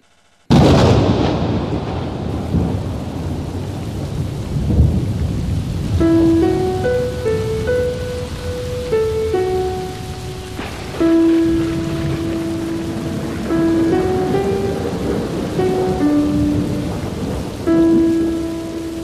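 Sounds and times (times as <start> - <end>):
deep rumbles of thunder: 0.5 - 19.0
heavy rain pouring in a thunderstorm: 0.5 - 19.0
gentle tonal melody: 6.0 - 19.0.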